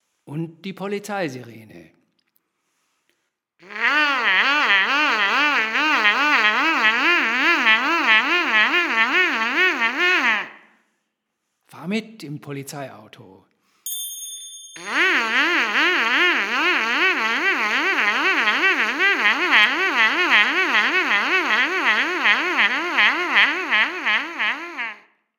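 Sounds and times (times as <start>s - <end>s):
police siren imitated with a mouthpiece: 3.6s - 10.6s, 14.8s - 25.0s.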